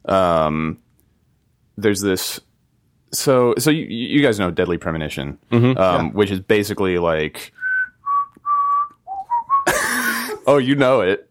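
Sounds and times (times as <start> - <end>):
speech: 0.1 - 0.9, 1.8 - 2.5, 3.1 - 7.6, 10.4 - 11.3
whistled video game soundtrack melody: 7.6 - 9.7.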